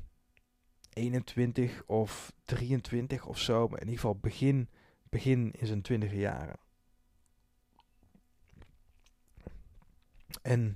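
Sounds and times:
speech: 1.0s - 6.6s, 10.4s - 10.7s
soft wet mouth clicks: 7.7s - 10.5s
person sipping whisky: 7.8s - 10.5s
person swallowing whisky: 8.4s - 10.5s.

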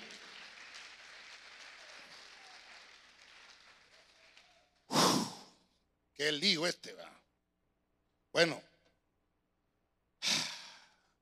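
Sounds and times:
crowd clapping hands for the king: 0.0s - 5.5s
loud breathy burst: 4.9s - 5.6s
speech: 6.2s - 7.2s, 8.4s - 8.7s.

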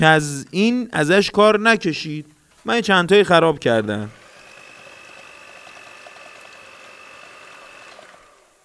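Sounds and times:
speech: 0.0s - 4.2s
electric hand blender shredding cooked meat: 4.0s - 8.6s.

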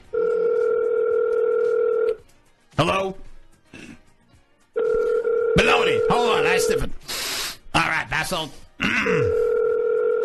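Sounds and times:
telephone ringing tone heard over the line: 0.0s - 2.2s, 4.8s - 6.8s, 9.3s - 10.2s
speech: 2.8s - 3.3s, 5.6s - 6.9s, 8.2s - 9.5s.

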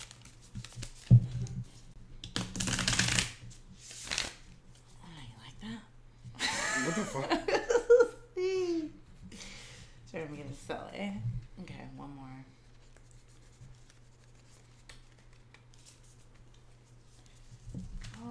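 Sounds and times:
deck of oracle cards being shuffled: 0.0s - 1.6s, 2.2s - 4.5s, 12.8s - 18.2s
people laughing playfully: 6.4s - 8.8s
speech: 7.1s - 7.4s, 10.7s - 12.6s.

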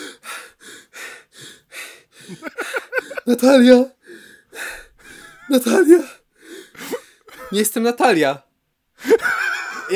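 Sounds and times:
voice imitating a man breathing deeply in panic with voiced gasps: 0.0s - 3.3s, 4.0s - 7.3s
speech: 2.3s - 2.6s, 3.2s - 4.0s, 5.5s - 6.2s, 7.5s - 8.4s.

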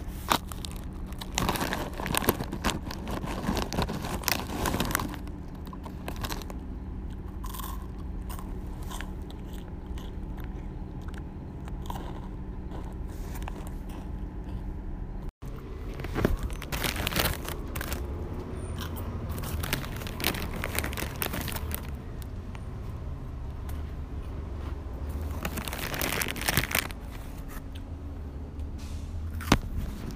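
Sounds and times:
crunchy bites and chewing of Snickers and chips: 0.0s - 14.8s, 15.6s - 18.2s, 18.8s - 22.3s, 25.0s - 27.0s, 29.3s - 29.8s
steady low hum: 0.0s - 30.1s.

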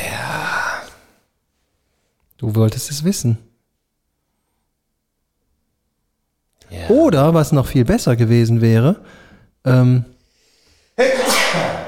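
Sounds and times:
speech: 2.4s - 3.5s, 6.9s - 10.1s, 11.0s - 11.2s
loud sneeze: 11.0s - 11.8s.

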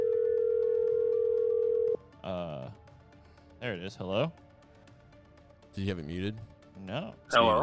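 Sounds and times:
ringing tone of an outgoing phone call: 0.0s - 2.0s
speech: 3.6s - 4.4s, 5.8s - 7.6s.

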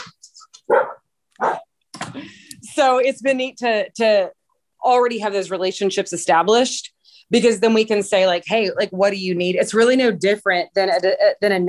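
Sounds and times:
dog barking: 0.7s - 1.7s
speech: 2.1s - 11.6s.

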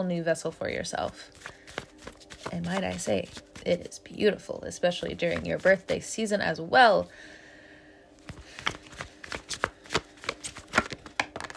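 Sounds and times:
speech: 0.0s - 1.8s, 2.5s - 7.4s
tarot cards drawn and handled from a deck: 1.0s - 3.9s, 5.0s - 6.0s, 8.2s - 11.5s.

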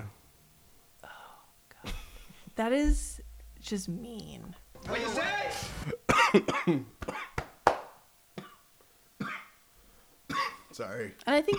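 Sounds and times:
speech: 2.6s - 7.0s, 10.8s - 11.5s
person coughing: 5.8s - 7.3s, 10.3s - 10.6s.

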